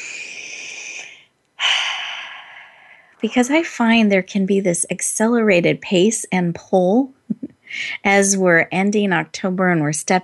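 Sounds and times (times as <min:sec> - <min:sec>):
deep breath: 0:00.0 - 0:03.2
speech: 0:03.2 - 0:10.2.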